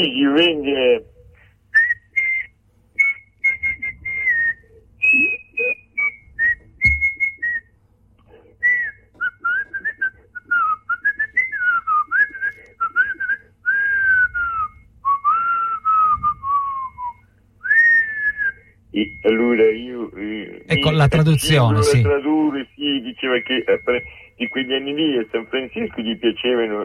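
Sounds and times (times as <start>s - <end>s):
speech: 0.0s - 1.2s, 19.5s - 26.8s
person whistling a lively melody: 1.8s - 7.7s, 8.6s - 19.4s.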